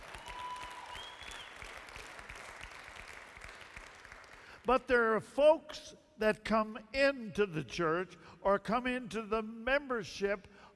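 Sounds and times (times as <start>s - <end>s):
church audience clapping: 0.0s - 4.7s
speech: 4.7s - 10.5s.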